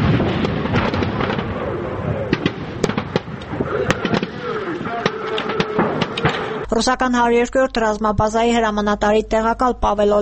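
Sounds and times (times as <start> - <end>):
continuous rumbling roar: 0.0 - 6.6
rocket artillery and tank fire explosions in mountains: 0.0 - 6.7
indistinct voices: 3.6 - 10.1
speech: 6.8 - 10.1.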